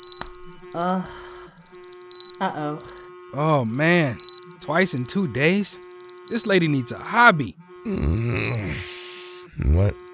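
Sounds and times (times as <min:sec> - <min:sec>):
steady lower hum: 0:00.0 - 0:10.0
several phones ringing with the same shared ringtone: 0:00.0 - 0:10.1
speech: 0:00.7 - 0:01.3, 0:02.4 - 0:09.0, 0:09.6 - 0:10.0
brief vocal sound: 0:07.9 - 0:10.0.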